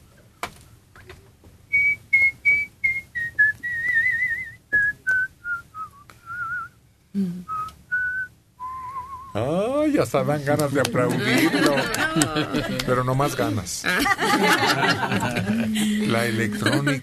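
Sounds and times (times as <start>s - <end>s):
faint noise: 0.0s - 17.0s
person whistling a melody: 1.7s - 6.7s, 7.5s - 9.4s
speech: 7.2s - 7.5s, 9.4s - 17.0s
laughter: 10.6s - 17.0s.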